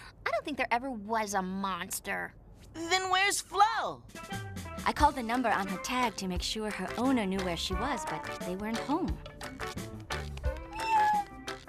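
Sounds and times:
speech: 0.4 - 9.9
small cat meowing: 10.7 - 11.3.

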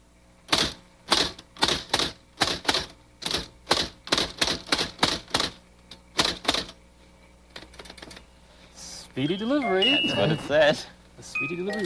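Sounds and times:
electric typewriter keystrokes: 0.5 - 5.6, 6.2 - 6.8
speech: 9.2 - 11.8.

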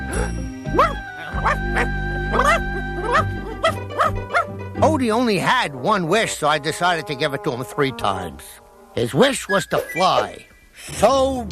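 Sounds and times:
puppy barking and whimpering: 0.7 - 4.5, 9.6 - 10.4
speech: 5.0 - 11.4.

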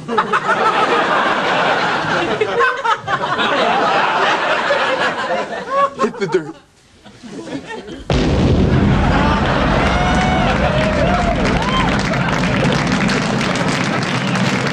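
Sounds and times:
laughter: 0.0 - 8.1, 8.9 - 14.7
speech: 0.1 - 0.6, 6.2 - 6.7
massive house explosion with a booming blast: 8.1 - 14.7
sustained roar of rumbling debris and crackling: 8.1 - 14.7.

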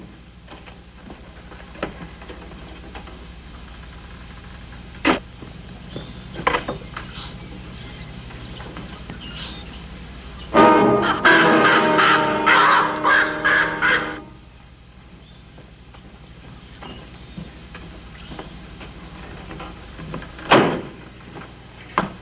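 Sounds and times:
hawk giving harsh screeching cries: 10.6 - 14.3.

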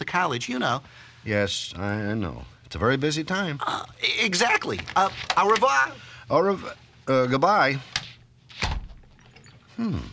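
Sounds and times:
speech: 0.1 - 8.0, 9.8 - 10.1
door slamming shut: 8.6 - 9.1.

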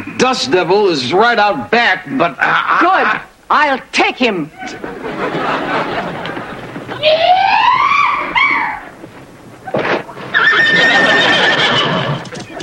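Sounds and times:
speech: 0.2 - 6.3, 7.0 - 7.7, 10.6 - 12.0
laughter: 4.5 - 8.5, 10.6 - 12.6
horse whinnying with a rising wavering neigh: 7.0 - 9.0, 10.2 - 12.6.

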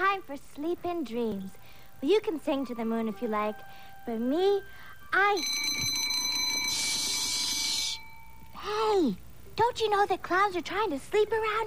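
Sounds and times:
speech: 0.2 - 5.9, 8.6 - 11.6
alarm clock bell ringing: 4.7 - 8.8.

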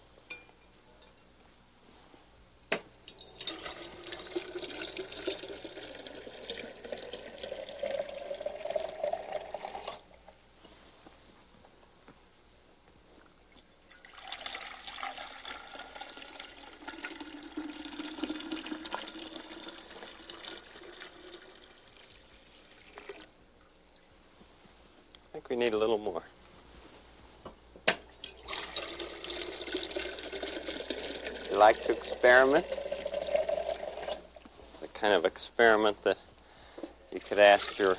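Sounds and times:
cold water pouring into a large container: 3.1 - 10.0, 13.9 - 23.3, 28.2 - 34.3, 37.2 - 37.9
speech: 25.5 - 26.3, 31.6 - 32.8, 35.0 - 36.2, 37.3 - 37.9.

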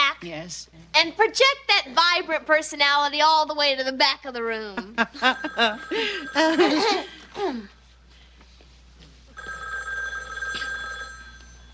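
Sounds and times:
speech: 0.2 - 7.8
telephone bell ringing with an electric trill: 5.2 - 7.3, 9.4 - 11.7.

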